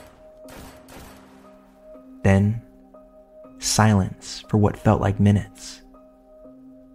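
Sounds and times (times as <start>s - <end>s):
gunshots: 0.0s - 1.7s
speech: 2.2s - 2.7s, 3.6s - 5.8s.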